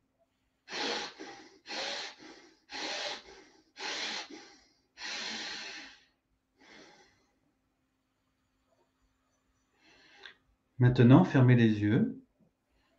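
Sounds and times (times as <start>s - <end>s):
slow deep breathing through the nose: 0.7s - 7.4s
speech: 10.8s - 12.2s.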